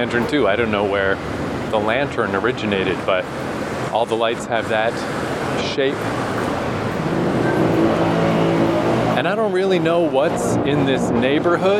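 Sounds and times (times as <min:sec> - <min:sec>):
speech: 0:00.0 - 0:06.4, 0:09.2 - 0:11.7
large bus engine rumbling past near a station: 0:00.0 - 0:11.7
road noise: 0:00.0 - 0:11.7.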